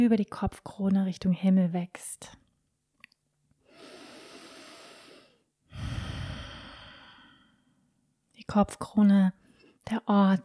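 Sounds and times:
speech: 0:00.0 - 0:02.4, 0:08.4 - 0:10.4
slow deep yoga breathing during prenatal yoga practice: 0:03.6 - 0:07.8.

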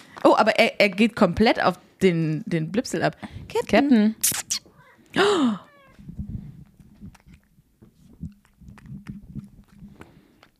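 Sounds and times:
speech: 0:00.2 - 0:05.7
cat smacking and chewing while eating: 0:05.9 - 0:10.5.

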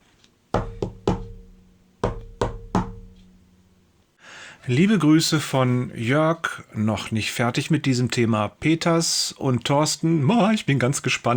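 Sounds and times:
firm knocks on a door: 0:00.6 - 0:03.4
speech: 0:04.7 - 0:11.3.

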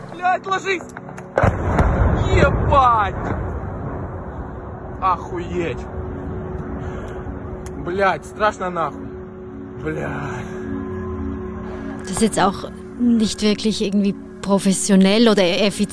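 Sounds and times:
steady outdoor hum: 0:00.0 - 0:15.9
speech: 0:00.2 - 0:01.6, 0:02.3 - 0:03.4, 0:05.0 - 0:06.0, 0:07.9 - 0:09.1, 0:09.8 - 0:10.6, 0:12.1 - 0:15.9
loud rumbling blast of drone impact: 0:01.4 - 0:06.1.

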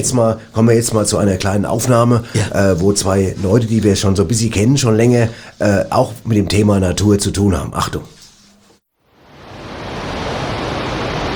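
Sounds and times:
speech: 0:00.0 - 0:08.1
powerful roar of rushing water: 0:09.2 - 0:11.3.

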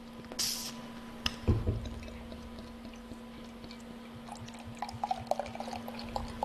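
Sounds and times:
low steady hum: 0:00.0 - 0:06.4
light golden pilsner beer poured from a large bottle: 0:04.3 - 0:06.4.

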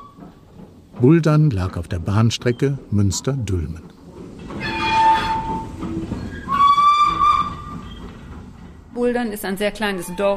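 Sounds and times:
train rolling along the rails: 0:00.0 - 0:10.3
speech: 0:01.0 - 0:04.0, 0:09.0 - 0:10.3
train whistle blasts: 0:04.6 - 0:05.8, 0:06.4 - 0:07.8.

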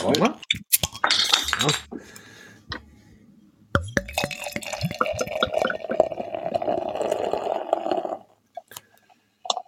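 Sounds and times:
speech: 0:00.0 - 0:00.6, 0:01.6 - 0:01.8
glass clinking: 0:03.8 - 0:05.6
brown ale pouring into a glass: 0:03.9 - 0:08.2.

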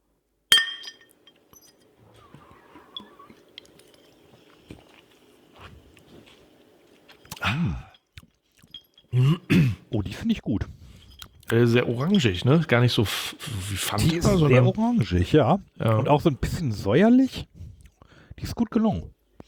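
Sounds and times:
glass clattering: 0:00.5 - 0:01.9, 0:08.6 - 0:09.1
glasses clinking together in a toast: 0:00.5 - 0:04.2, 0:07.9 - 0:09.6
glass handling noises: 0:00.5 - 0:04.3, 0:07.2 - 0:09.3
sipping: 0:00.6 - 0:10.0, 0:10.9 - 0:14.9
speech: 0:07.5 - 0:07.9, 0:10.2 - 0:10.8, 0:11.5 - 0:17.5, 0:18.4 - 0:19.2.

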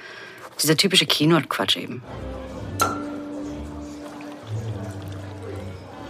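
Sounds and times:
speech: 0:00.6 - 0:02.4
glass clinking against glass: 0:02.8 - 0:03.3.

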